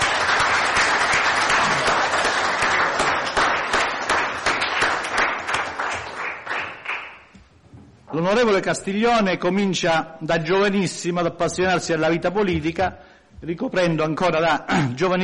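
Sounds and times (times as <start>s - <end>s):
crowd applauding warmly: 0.0s - 7.3s
speech: 8.2s - 15.2s.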